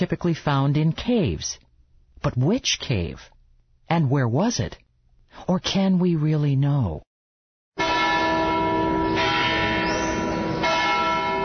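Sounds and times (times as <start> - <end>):
speech: 0.0 - 1.6, 2.2 - 3.3, 3.9 - 4.8, 5.4 - 7.1
church bells ringing: 7.8 - 11.4.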